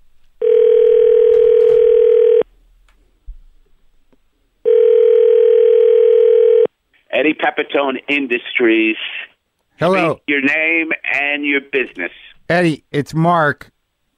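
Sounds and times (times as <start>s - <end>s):
telephone tone while placing a call: 0.4s - 2.4s, 4.6s - 6.7s
speech: 7.2s - 13.7s.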